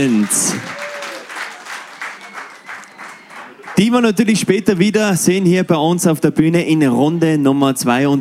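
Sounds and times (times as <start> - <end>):
speech: 0.0 - 0.8, 3.8 - 8.2
crowd applauding steadily: 0.0 - 4.2.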